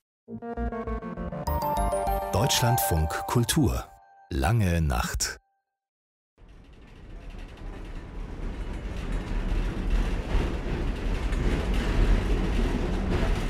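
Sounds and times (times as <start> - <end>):
speech: 0.3 - 1.2, 2.4 - 5.4
Soviet-made tram rattling and creaking through Lviv from the old town: 6.5 - 13.4.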